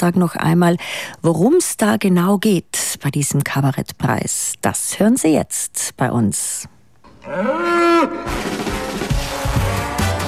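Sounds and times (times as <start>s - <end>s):
speech: 0.0s - 8.8s
bull mooing: 7.1s - 10.2s.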